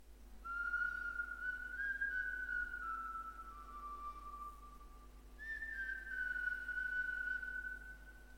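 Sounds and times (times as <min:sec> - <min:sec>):
distant whistle: 0:00.4 - 0:08.3.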